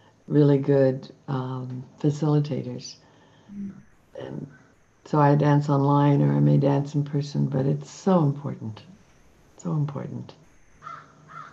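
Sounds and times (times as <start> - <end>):
low hum: 0.0 - 11.5
speech: 0.3 - 8.9, 9.6 - 10.4
crow cawing: 10.8 - 11.5.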